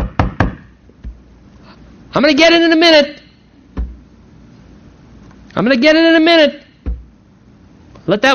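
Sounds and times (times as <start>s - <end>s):
knocking on a door: 0.0s - 0.6s, 3.8s - 4.0s, 6.8s - 7.0s
speech: 2.1s - 3.2s, 5.6s - 6.6s, 8.1s - 8.3s.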